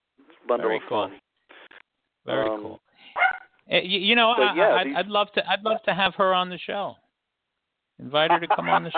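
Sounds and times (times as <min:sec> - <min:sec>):
speech: 0:00.5 - 0:01.2, 0:02.3 - 0:02.8, 0:03.7 - 0:07.0, 0:08.0 - 0:08.9
Norwich Terrier rescue dog barking: 0:03.2 - 0:03.5
laughter: 0:08.2 - 0:08.9.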